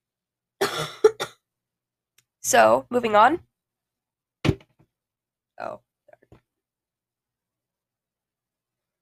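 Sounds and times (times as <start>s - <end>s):
raspy coughing fit: 0.6s - 1.4s
speech: 2.5s - 3.5s, 5.6s - 5.8s.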